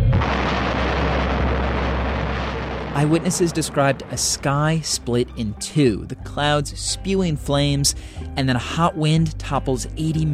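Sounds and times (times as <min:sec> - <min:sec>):
massive explosion boom: 0:00.1 - 0:05.8
speech: 0:03.0 - 0:10.3.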